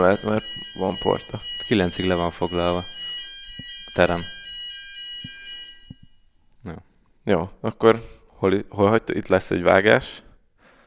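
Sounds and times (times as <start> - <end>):
speech: 0.0 - 3.1, 4.0 - 4.4, 7.3 - 10.2
emergency alarm bell ringing inside a building: 0.0 - 6.4.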